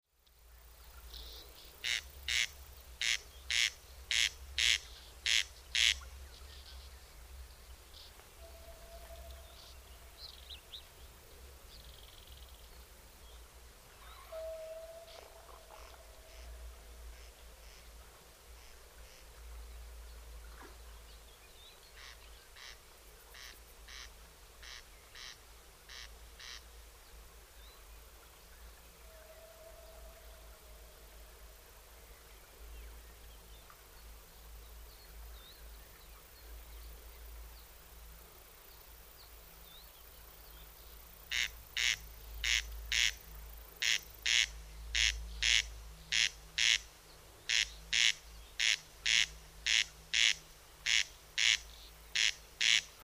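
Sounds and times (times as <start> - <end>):
corncrake in Murnauer Moos: 1.1 - 6.9, 14.0 - 17.9, 22.0 - 26.6, 41.3 - 53.0.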